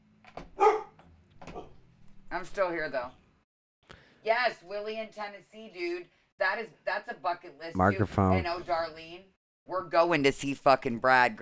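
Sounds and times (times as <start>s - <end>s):
dog barking: 0.6s - 1.8s
speech: 2.3s - 3.2s, 4.2s - 11.4s.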